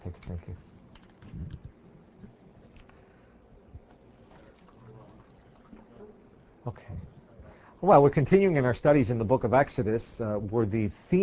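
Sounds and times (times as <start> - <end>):
speech: 0.3 - 0.7, 7.8 - 11.2
water pouring into a container: 4.2 - 5.9.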